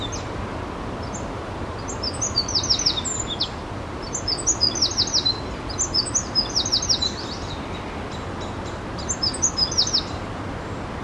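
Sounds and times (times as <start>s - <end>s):
Eurasian wren Troglodytes troglodytes singing: 0.0s - 0.4s, 1.0s - 11.0s
low background hiss: 0.0s - 11.0s.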